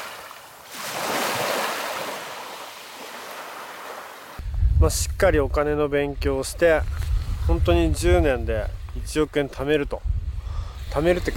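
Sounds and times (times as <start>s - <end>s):
ocean waves washing onto the shore at the seaside: 0.0s - 4.4s
wind noise: 4.4s - 11.3s
speech: 4.8s - 10.1s, 10.9s - 11.3s.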